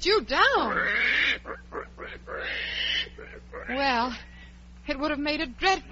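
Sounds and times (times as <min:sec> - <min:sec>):
speech: 0:00.0 - 0:00.8, 0:03.7 - 0:04.3, 0:04.9 - 0:05.9
pig grunting: 0:00.6 - 0:04.1.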